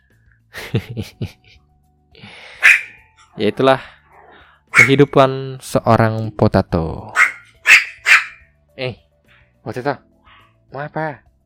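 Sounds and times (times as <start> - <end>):
laughter: 0.6 - 1.6
speech: 0.7 - 1.6, 3.4 - 4.0, 4.8 - 7.8, 8.8 - 9.0, 9.6 - 10.1, 10.7 - 11.3
dog barking: 2.6 - 3.0, 4.7 - 5.1, 7.1 - 8.4.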